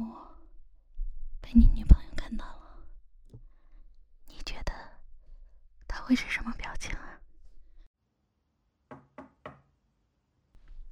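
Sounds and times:
speech: 1.5s - 2.4s, 6.1s - 6.9s
firm knocks on a door: 8.9s - 9.6s.

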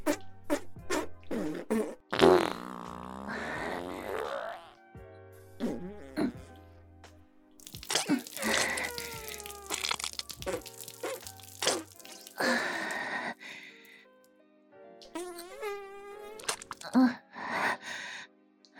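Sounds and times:
farts: 0.0s - 4.9s, 5.6s - 6.6s, 7.6s - 13.0s, 15.0s - 17.0s.

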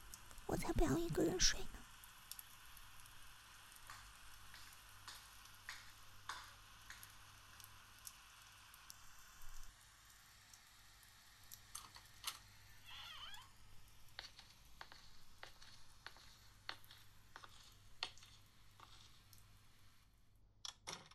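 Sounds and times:
speech: 0.5s - 1.8s
steady rain: 1.8s - 14.3s
raindrops ticking and pattering against a surface: 14.1s - 19.5s.

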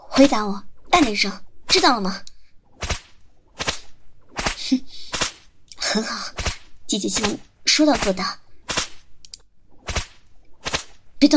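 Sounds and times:
speech: 0.2s - 2.9s, 4.7s - 5.0s, 5.9s - 8.4s
whip cracks: 2.8s - 5.5s, 6.3s - 9.1s, 9.8s - 11.1s.

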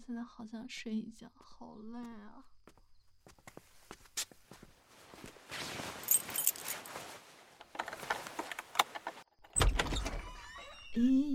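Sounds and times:
speech: 0.1s - 2.6s, 11.0s - 11.3s
footsteps: 2.7s - 9.2s
door of an ancestral family house creaking open: 7.7s - 11.3s.

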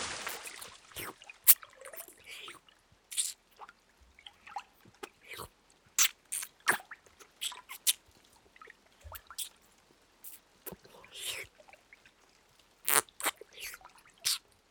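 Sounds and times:
wet mouth sounds of licking and nibbling an ear: 0.2s - 3.4s, 5.0s - 8.0s, 9.1s - 9.6s, 10.2s - 11.5s, 12.9s - 14.5s.

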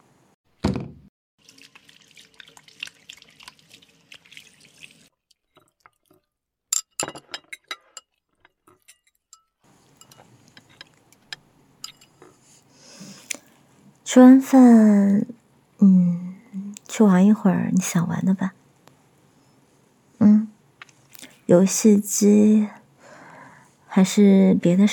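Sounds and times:
running tap water as hands are washed: 1.4s - 6.0s
glass and cutlery clinking: 6.7s - 8.1s, 8.8s - 12.3s
speech: 14.1s - 16.1s, 17.0s - 18.6s, 21.5s - 22.8s, 24.0s - 24.9s.

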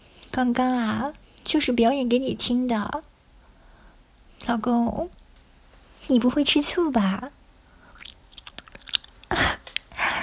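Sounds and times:
speech: 0.4s - 3.1s, 4.4s - 5.2s, 6.0s - 7.4s
chewing and biting into a large cream-filled sausage: 7.8s - 10.2s.

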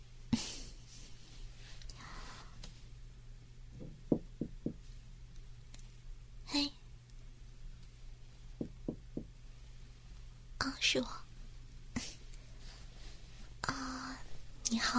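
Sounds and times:
low steady hum: 0.0s - 14.9s
soft breathy noises: 0.4s - 2.9s, 11.9s - 14.9s
quick knocking on a hotel room door: 3.8s - 4.8s, 8.6s - 9.4s.

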